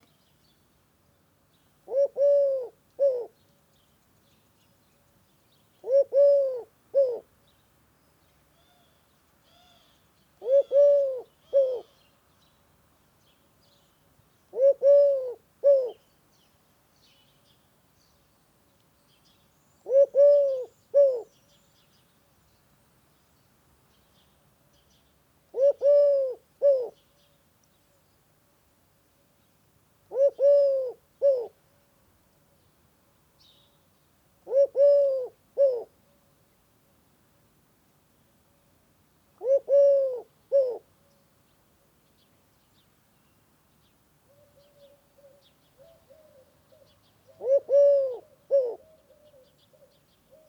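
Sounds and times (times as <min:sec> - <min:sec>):
Eurasian collared dove calling: 0:01.9 - 0:03.4, 0:05.8 - 0:07.3, 0:10.4 - 0:12.0, 0:14.5 - 0:16.0, 0:19.8 - 0:21.3, 0:25.5 - 0:27.0, 0:30.1 - 0:31.6, 0:34.5 - 0:35.9, 0:39.4 - 0:40.9, 0:44.3 - 0:50.4.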